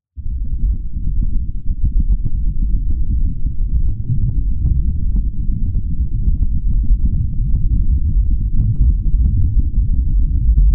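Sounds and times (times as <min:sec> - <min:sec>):
deep ground vibration from seismic events on Venus: 0:00.2 - 0:10.7
low rumble of wind on the surface of Venus: 0:00.2 - 0:10.7.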